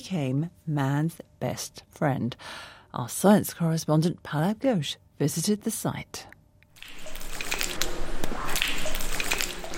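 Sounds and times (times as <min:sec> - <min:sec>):
speech: 0:00.1 - 0:06.4
water dripping from cave stalactites: 0:06.8 - 0:09.7.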